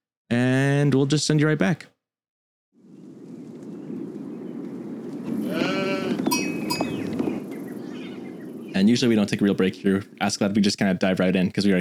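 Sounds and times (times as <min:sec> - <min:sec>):
speech: 0:00.9 - 0:01.9, 0:08.8 - 0:11.7
dense rumble of a sheep flock milling about: 0:02.9 - 0:08.8
sheep bleating: 0:05.4 - 0:06.4.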